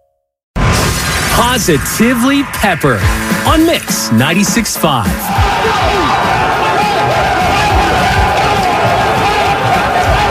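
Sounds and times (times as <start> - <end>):
speech: 1.4 - 6.5
football team cheering in locker room after winning a game: 2.6 - 10.2.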